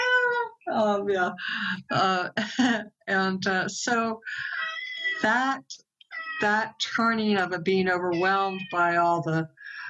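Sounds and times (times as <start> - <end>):
speech: 0.7 - 4.6, 5.2 - 5.8, 6.4 - 9.6
cat meowing: 4.5 - 5.3, 6.0 - 7.3, 8.0 - 9.1.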